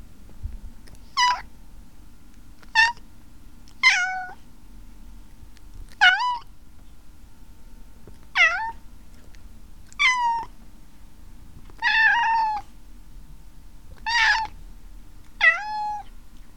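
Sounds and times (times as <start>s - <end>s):
low steady hum: 0.0s - 16.5s
Maine Coon cat meowing: 3.8s - 4.4s, 6.0s - 6.5s, 8.4s - 8.8s, 10.0s - 10.5s, 11.8s - 12.7s, 14.0s - 14.5s, 15.4s - 16.1s.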